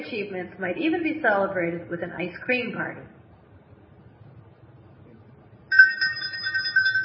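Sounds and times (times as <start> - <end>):
speech: 0.0 - 3.2
handbell ringing: 5.7 - 7.0.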